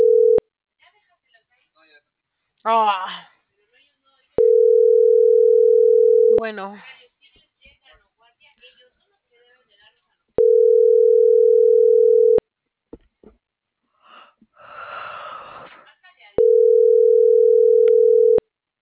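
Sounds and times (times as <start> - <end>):
telephone ringback tone of an unanswered call: 0.0 - 0.4, 4.4 - 6.4, 10.4 - 12.4, 16.4 - 18.4
speech: 2.6 - 3.3, 6.4 - 7.0
faint breathing: 13.9 - 15.9.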